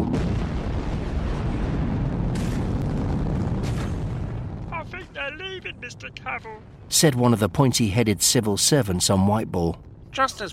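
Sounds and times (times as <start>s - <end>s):
spaceship retro rockets firing: 0.0s - 4.9s
speech: 5.3s - 10.5s.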